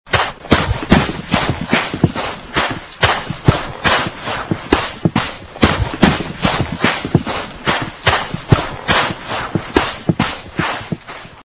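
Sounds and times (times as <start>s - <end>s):
running on sand as sports sound effect: 0.1s - 11.4s.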